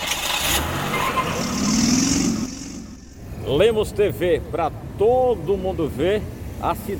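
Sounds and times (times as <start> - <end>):
car engines rumbling in busy street traffic in Codó: 0.0 - 6.9
vehicle revving and passing: 0.2 - 4.4
speech: 3.5 - 6.9.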